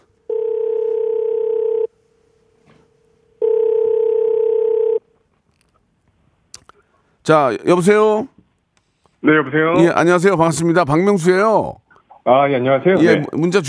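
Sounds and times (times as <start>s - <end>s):
telephone ringback tone while placing call: 0.3s - 1.9s, 3.4s - 5.0s
speech: 7.3s - 8.3s, 9.2s - 13.6s.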